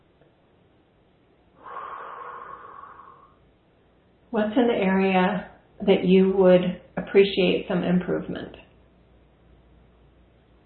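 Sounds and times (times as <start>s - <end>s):
deep breath during a relaxation exercise: 1.6s - 3.4s
speech: 4.3s - 8.6s.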